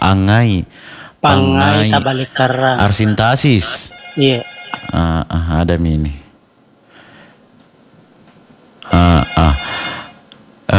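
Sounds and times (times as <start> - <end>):
speech: 0.1 - 6.2, 8.9 - 9.8
telephone ringing on a call-in radio show: 3.9 - 5.3, 8.9 - 10.2.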